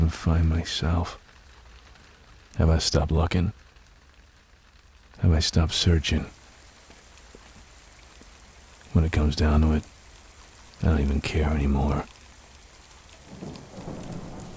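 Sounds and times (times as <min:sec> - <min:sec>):
steady rain hissing: 0:00.0 - 0:14.5
speech: 0:00.2 - 0:01.2, 0:02.6 - 0:03.6, 0:05.2 - 0:06.4, 0:08.9 - 0:09.9, 0:10.8 - 0:12.2, 0:13.4 - 0:14.0
low soft rumble of thunder: 0:12.8 - 0:14.5.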